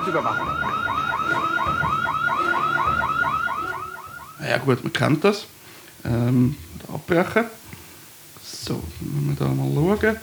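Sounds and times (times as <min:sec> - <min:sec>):
loud system alarm with rising chirps: 0:00.0 - 0:05.2
speech: 0:00.1 - 0:03.6, 0:04.4 - 0:07.6, 0:08.6 - 0:10.2.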